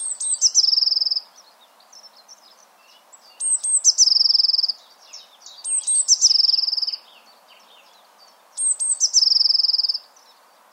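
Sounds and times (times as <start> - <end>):
Eurasian blue tit Cyanistes caeruleus singing trills: 0.0 - 8.0, 8.6 - 10.3.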